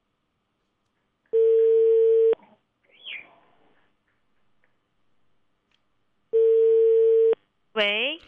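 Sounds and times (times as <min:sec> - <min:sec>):
telephone ringback tone while placing a call to a transport bureau: 0:01.4 - 0:02.4, 0:06.3 - 0:07.4
speech: 0:07.8 - 0:08.0.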